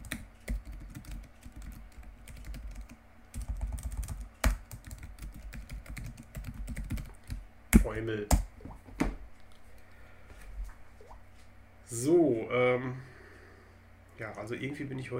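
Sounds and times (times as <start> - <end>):
typing on a computer keyboard: 0.0 - 7.4
speech: 7.9 - 8.5, 11.9 - 13.1, 14.2 - 15.1.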